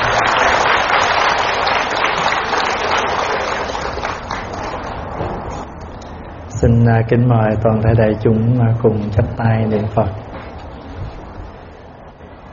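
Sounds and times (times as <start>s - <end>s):
large audience applauding to welcome a monk teacher at a Buddhist gathering: 0.0s - 5.5s
speech: 6.6s - 10.3s.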